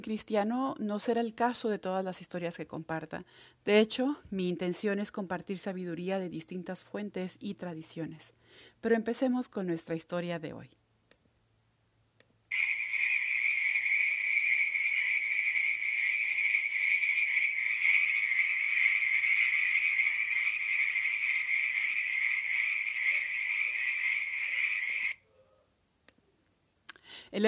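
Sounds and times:
speech: 0:00.0 - 0:10.8
dense chorus of frogs croaking: 0:12.5 - 0:25.2.

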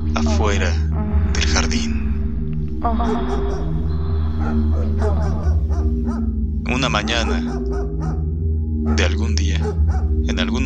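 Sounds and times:
steady low droning hum: 0:00.0 - 0:10.6
speech: 0:00.2 - 0:02.0, 0:02.8 - 0:03.8, 0:04.4 - 0:08.2, 0:08.9 - 0:10.6
dogs barking and yipping outside a garden: 0:04.8 - 0:10.2.

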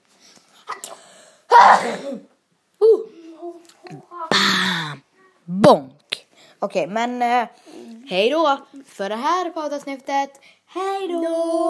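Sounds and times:
single loud sneeze: 0:00.6 - 0:02.3
breathy intake before a sneeze: 0:04.3 - 0:05.0
speech: 0:06.7 - 0:11.6.

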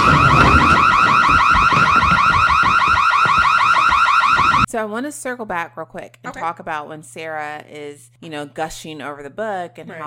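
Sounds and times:
kitchen fire alarm warbling: 0:00.0 - 0:04.7
speech: 0:04.8 - 0:10.0.

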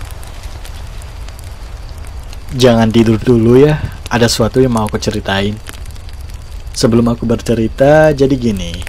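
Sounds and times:
campfire crackling with pops and snaps: 0:00.0 - 0:08.8
speech: 0:02.5 - 0:05.7, 0:06.8 - 0:08.8.

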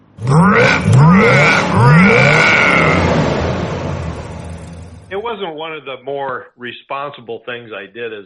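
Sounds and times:
V8 muscle car engine with glasspack exhaust revving and rumbling: 0:00.0 - 0:05.2
speech: 0:05.3 - 0:08.2.

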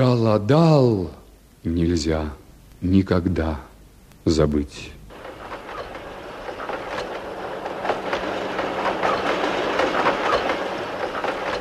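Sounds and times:
speech: 0:00.0 - 0:05.0
train wheels clacking over rail joints: 0:05.1 - 0:11.5.

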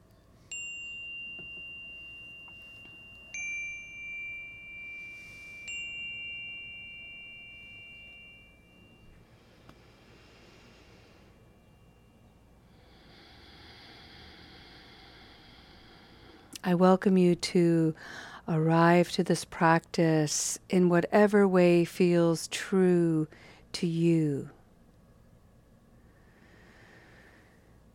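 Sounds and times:
meditation chime ringing: 0:00.4 - 0:12.7
speech: 0:16.6 - 0:24.6.

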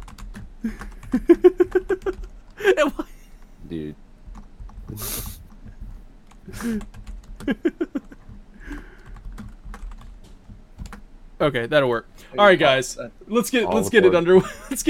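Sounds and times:
typing on a computer keyboard: 0:00.0 - 0:02.4, 0:06.3 - 0:11.0
speech: 0:00.6 - 0:01.5, 0:11.4 - 0:14.8
laughter: 0:00.7 - 0:03.1, 0:07.4 - 0:08.2
breathy noises: 0:04.9 - 0:07.0, 0:08.5 - 0:09.5.

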